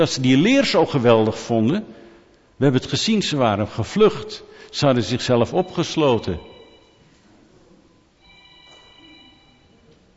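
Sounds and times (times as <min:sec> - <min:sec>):
speech: 0:00.0 - 0:02.0, 0:02.6 - 0:06.5
mobile phone ringing with high electronic melody in audience: 0:05.4 - 0:07.1, 0:08.2 - 0:09.8.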